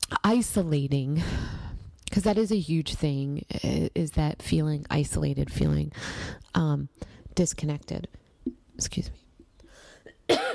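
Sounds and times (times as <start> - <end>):
speech: 0.3 - 8.2, 8.8 - 9.2
person coughing: 10.1 - 10.5.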